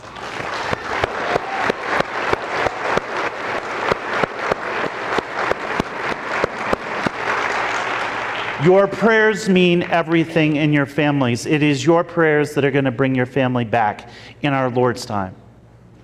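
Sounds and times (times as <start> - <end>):
crowd applauding loudly with sharp rhythmic accents: 0.0 - 9.1
speech: 8.6 - 15.4.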